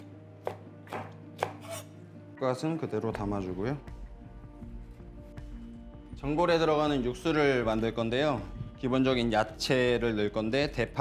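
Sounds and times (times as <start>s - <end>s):
knife slicing green and red chili peppers diagonally on a cutting board: 0.0s - 1.9s
speech: 2.4s - 4.0s, 6.2s - 10.9s.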